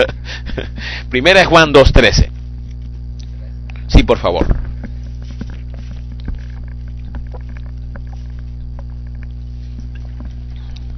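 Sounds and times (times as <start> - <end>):
speech: 0.0 - 2.4, 3.9 - 4.6
steady low electrical hum: 0.0 - 10.9
sipping of water with mouth clicks and gulps: 4.7 - 10.9.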